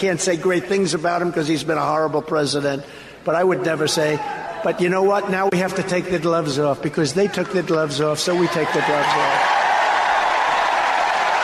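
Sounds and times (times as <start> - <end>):
speech: 0.0 - 9.5
large rally crowd cheering and clapping: 8.3 - 11.4.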